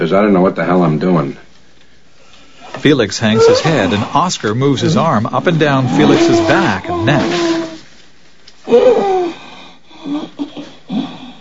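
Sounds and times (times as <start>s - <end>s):
speech: 0.0s - 1.5s, 2.8s - 7.6s, 8.7s - 9.2s
noisy wheezing breathing: 2.2s - 7.8s, 8.6s - 11.3s.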